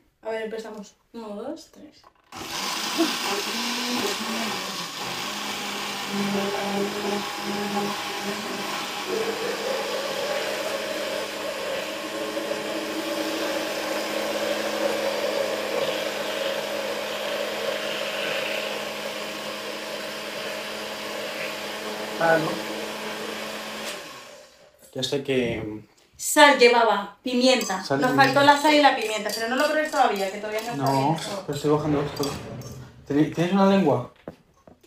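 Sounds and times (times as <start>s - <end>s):
speech: 0.3s - 5.2s, 6.1s - 10.0s, 22.2s - 22.7s, 25.0s - 32.5s, 33.1s - 34.1s
kitchen blender motor whirring while mixing food: 2.2s - 24.8s.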